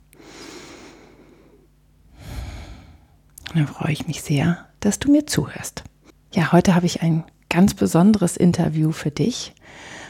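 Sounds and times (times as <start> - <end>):
slow deep breath in and out: 0.2 - 3.2, 9.6 - 10.0
speech: 3.6 - 10.0.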